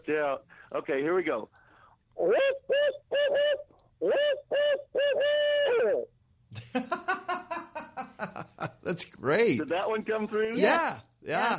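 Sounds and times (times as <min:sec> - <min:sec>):
speech: 0:00.1 - 0:01.6, 0:02.2 - 0:07.4, 0:08.9 - 0:11.5
owl hooting: 0:02.2 - 0:06.1
laughter: 0:06.6 - 0:09.0.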